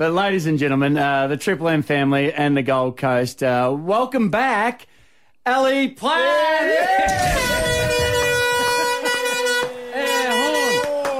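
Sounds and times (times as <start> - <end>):
speech: 0.0 - 7.8
loud sustained air horn blaring with strong harmonic tones: 7.1 - 11.1.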